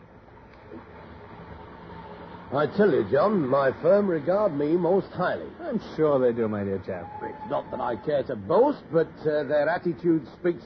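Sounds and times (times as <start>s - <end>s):
low rumbling noise on railway station platform: 0.0s - 10.6s
speech: 2.5s - 10.6s.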